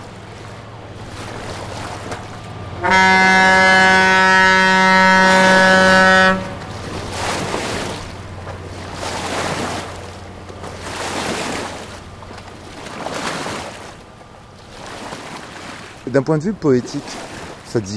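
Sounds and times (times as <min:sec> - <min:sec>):
barge wake waves sloshing: 0:00.0 - 0:17.9
large river barge engine rumbling: 0:00.0 - 0:17.9
long loud barge horn blast: 0:02.6 - 0:07.2
speech: 0:02.8 - 0:03.6, 0:16.2 - 0:17.9.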